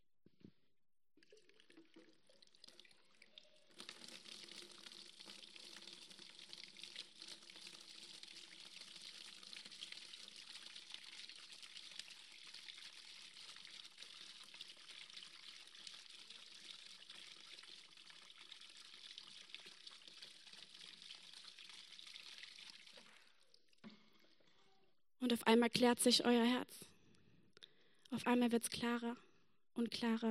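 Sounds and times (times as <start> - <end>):
water pouring into a 10-liter container: 1.2 - 24.7
speech: 25.2 - 26.9, 28.2 - 30.2.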